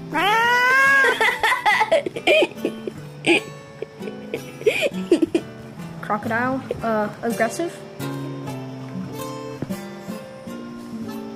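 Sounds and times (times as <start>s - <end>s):
cat meowing and chirping: 0.0s - 1.2s
laughter: 0.8s - 5.4s
speech: 6.2s - 7.8s.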